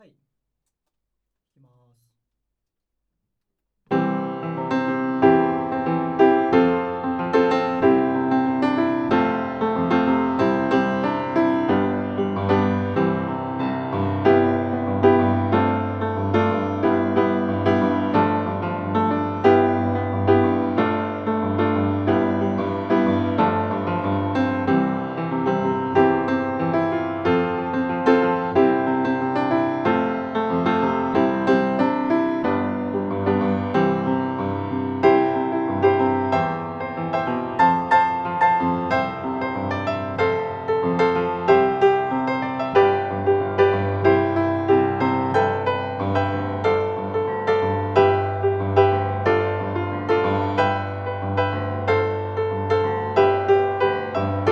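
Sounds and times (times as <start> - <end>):
piano strings played inside the piano: 3.9 - 54.5.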